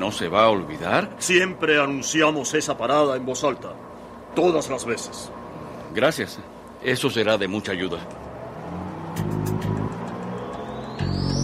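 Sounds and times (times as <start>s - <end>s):
speech: 0.0s - 8.2s
large bus engine rumbling and revving as it pulls away: 7.8s - 11.4s.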